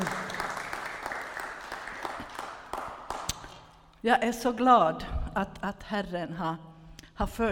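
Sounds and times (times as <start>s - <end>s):
crowd applauding for three performers: 0.0s - 3.3s
speech: 4.0s - 7.5s.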